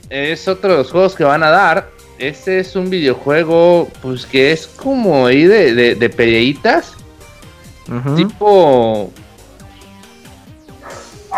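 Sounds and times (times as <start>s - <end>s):
speech: 0.0s - 7.0s, 7.9s - 9.2s
dog barking in short yips: 10.8s - 11.3s.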